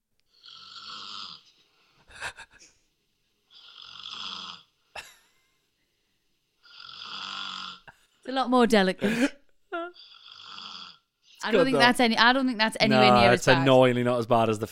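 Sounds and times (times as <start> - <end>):
woman snoring with long rasping breaths: 0.3 - 1.4, 3.5 - 4.7, 6.6 - 8.0, 9.0 - 11.9
speech: 8.3 - 9.4, 11.5 - 14.7.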